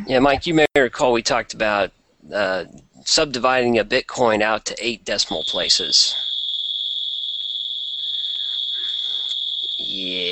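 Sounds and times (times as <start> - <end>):
speech: 0.0 - 6.3, 9.8 - 10.3
building fire alarm high-pitched tone: 5.2 - 10.3.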